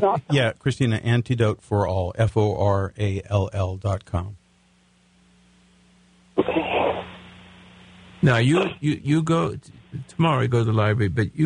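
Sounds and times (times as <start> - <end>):
speech: 0.0 - 4.4, 8.2 - 11.4
person sneezing: 6.4 - 7.1.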